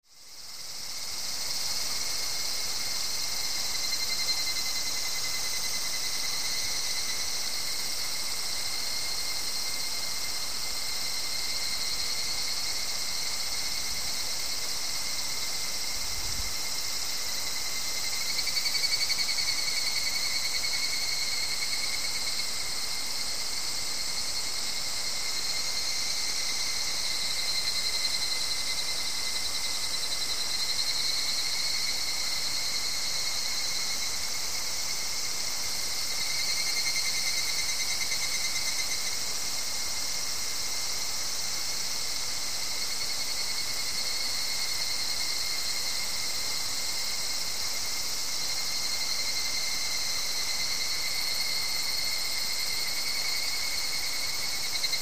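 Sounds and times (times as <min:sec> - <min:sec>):
higurashi cicada calling: 0:00.1 - 0:54.9.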